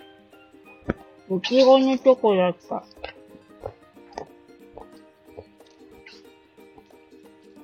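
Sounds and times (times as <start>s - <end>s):
speech: 0.8s - 3.0s
person chewing chocolate with wet mouth sounds: 3.0s - 7.1s.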